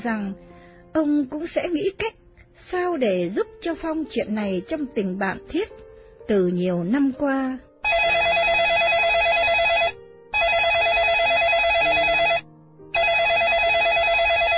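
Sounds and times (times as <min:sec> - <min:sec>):
speech: 0:00.0 - 0:08.1
telephone ringing in long trilling bursts: 0:07.8 - 0:14.5.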